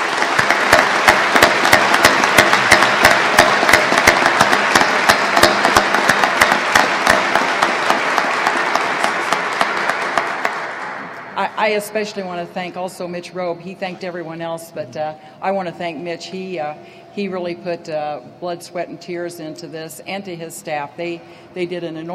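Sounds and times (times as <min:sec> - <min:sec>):
large audience applauding a governor: 0:00.0 - 0:11.4
speech: 0:11.7 - 0:22.1.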